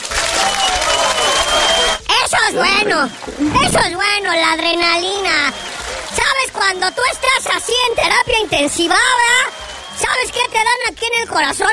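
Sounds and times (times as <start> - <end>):
dense clapping: 0.0 - 2.0, 4.9 - 10.6
excited shouting voices: 0.2 - 11.7
speech: 2.6 - 11.7.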